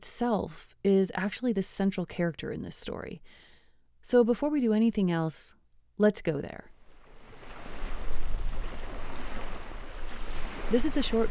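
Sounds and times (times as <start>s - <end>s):
speech: 0.2s - 6.7s, 10.7s - 11.2s
surf on a coastal plain: 6.8s - 11.2s
water lapping on a gravelly spit of a coastal plain: 6.8s - 11.2s
wind rushing on a gravelly spit of a coastal plain: 7.1s - 11.2s.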